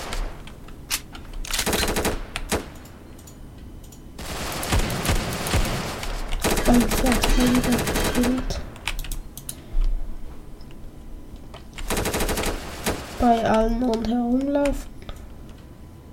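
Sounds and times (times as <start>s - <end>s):
video game gunfire: 1.6s - 2.8s, 4.2s - 8.8s, 11.8s - 13.4s
speech: 6.7s - 8.6s, 13.2s - 14.9s.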